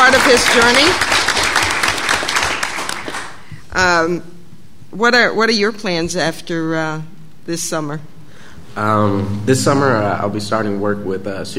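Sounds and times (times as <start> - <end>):
audience applause: 0.0 - 3.5
speech: 0.3 - 1.2, 3.8 - 8.1, 8.8 - 11.5.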